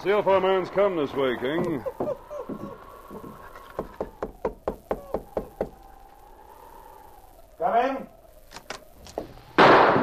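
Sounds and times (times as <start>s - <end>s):
speech: 0.0s - 2.3s
laughter: 0.0s - 4.3s
faint knocks and creaks: 1.0s - 5.9s
gunshot: 9.6s - 10.0s.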